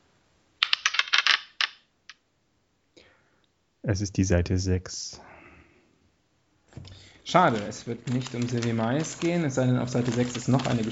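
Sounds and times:
dice clattering across a hard tabletop: 0.6s - 2.2s, 6.8s - 10.9s
speech: 3.8s - 5.3s, 7.3s - 10.9s.

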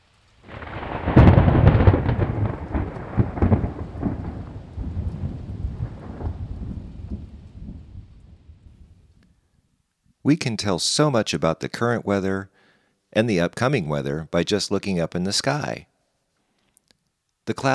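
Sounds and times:
steady falling rain: 0.0s - 9.1s
thunder clap and rolling thunder: 0.4s - 9.0s
speech: 10.3s - 15.9s, 17.5s - 17.7s.

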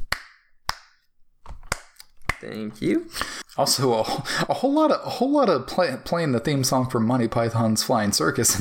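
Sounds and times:
one person clapping hands: 0.0s - 1.0s
speech: 2.4s - 8.5s.

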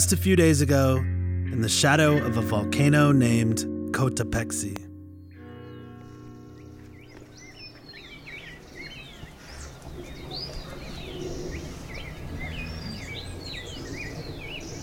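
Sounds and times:
speech: 0.0s - 4.9s
dawn chorus of birds singing and chirping in the Andes: 5.1s - 14.8s.

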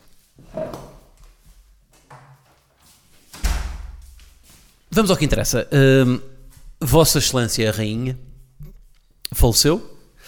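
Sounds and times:
door closing with a thud: 3.3s - 4.3s
speech: 5.0s - 6.3s, 6.9s - 8.3s, 9.4s - 9.9s.

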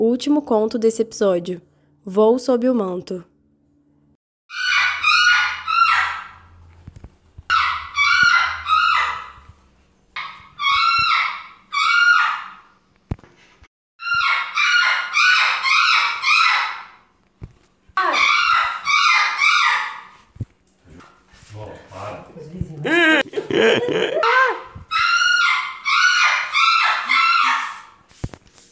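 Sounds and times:
speech: 0.0s - 3.3s
parrot screeching in a cage in a backyard: 4.5s - 6.5s, 7.5s - 9.5s, 10.2s - 12.7s, 14.0s - 17.0s, 18.0s - 20.2s, 24.2s - 28.0s
laughter: 22.8s - 24.4s.

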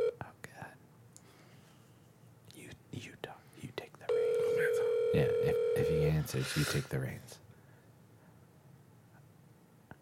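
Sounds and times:
quiet whispering: 0.2s - 0.8s, 2.5s - 4.9s, 6.0s - 7.4s
electronic ringback tones of an outgoing phone call on a phone's speakerphone: 4.1s - 6.0s
speech: 6.3s - 7.4s.

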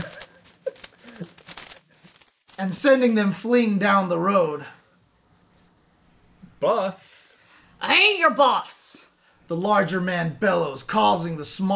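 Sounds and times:
paper rustling and crinkling as it is jolted loose: 0.0s - 3.5s
speech: 2.6s - 4.8s, 6.6s - 7.2s, 7.9s - 8.8s, 9.5s - 11.7s.

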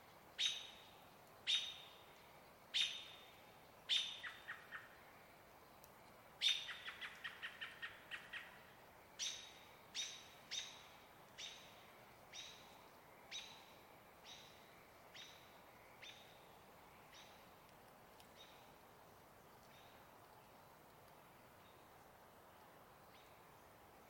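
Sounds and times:
American robin evening calls in a riparian area in the Cascade Mountains: 0.4s - 2.1s, 2.7s - 5.0s, 6.4s - 17.5s.

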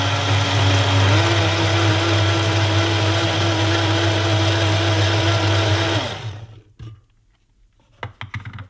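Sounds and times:
kitchen blender blending granola, yogurt, apple, blueberry and grapes: 0.0s - 6.6s.

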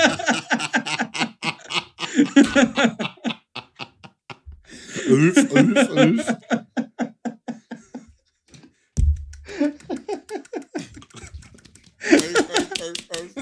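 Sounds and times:
laughter: 0.0s - 8.8s, 9.5s - 13.3s
speech: 2.4s - 3.0s, 5.1s - 6.6s
person thumping on their own chest: 9.0s - 9.6s.

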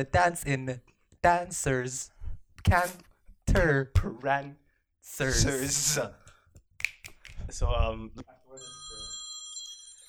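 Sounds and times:
speech: 0.0s - 6.2s, 7.5s - 8.8s
telephone ringing with a bright electronic trill: 8.6s - 10.0s.

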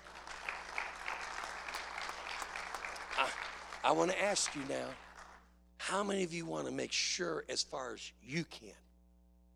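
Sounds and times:
audience clapping in praise of the Lord: 0.0s - 5.4s
speech: 3.2s - 5.1s, 5.9s - 8.8s.

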